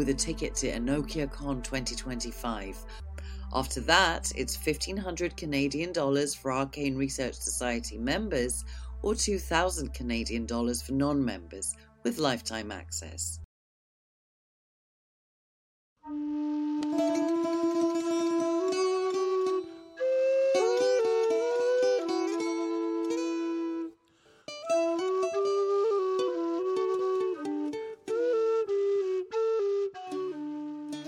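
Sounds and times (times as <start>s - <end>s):
bouzouki playing plucked string chords: 0.0s - 11.6s, 16.8s - 28.6s
speech: 0.0s - 13.4s
Irish low whistle playing an ornamented melody: 16.0s - 31.0s.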